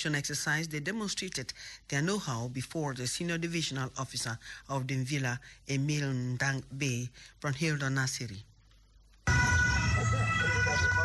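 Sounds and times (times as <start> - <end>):
speech: 0.0 - 8.5
national security traffic police patrol siren on public roads: 9.3 - 11.0.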